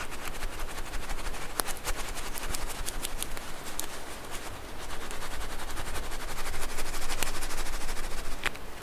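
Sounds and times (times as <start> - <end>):
squishy stress balls squeezed, crackling and popping: 0.1 - 8.7
sharp bright snaps: 1.4 - 3.9.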